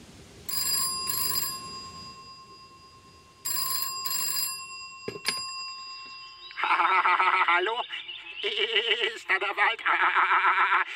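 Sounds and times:
telephone ringing with electronic double ring: 0.5s - 7.4s
laughter: 6.6s - 10.9s
speech: 9.5s - 10.9s.

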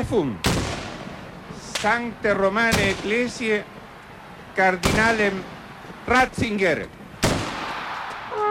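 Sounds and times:
speech: 0.0s - 0.5s, 1.8s - 3.8s, 4.6s - 7.0s
ceremonial black-powder salute shot: 0.4s - 3.6s, 4.8s - 5.7s, 7.2s - 8.4s.

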